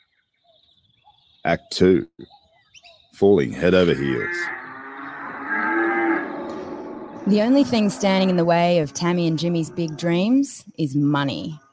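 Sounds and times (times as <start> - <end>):
speech: 1.5 - 2.4, 3.2 - 4.6, 7.3 - 11.6
cow mooing: 4.0 - 10.4.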